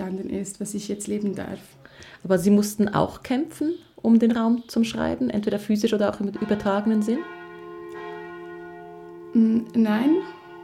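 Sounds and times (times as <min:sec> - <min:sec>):
speech: 0:00.2 - 0:07.4, 0:09.3 - 0:10.4
church bell ringing: 0:05.8 - 0:10.6.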